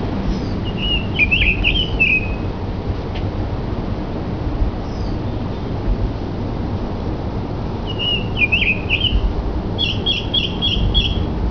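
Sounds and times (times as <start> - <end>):
heavy low rumbling background noise: 0.0 - 11.4
American robin singing warbled phrases: 0.3 - 2.5, 7.8 - 11.4.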